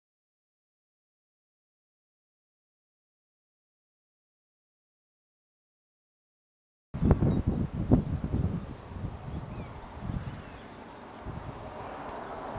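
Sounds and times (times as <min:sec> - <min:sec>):
honey-buzzard pair calling during display: 0:07.0 - 0:12.5.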